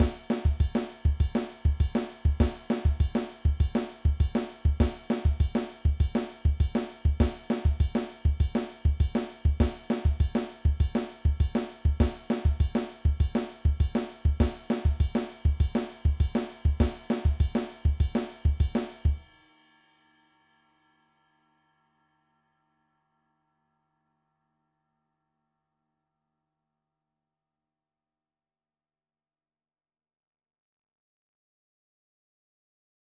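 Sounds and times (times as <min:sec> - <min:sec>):
samba beat: 0:00.0 - 0:19.2.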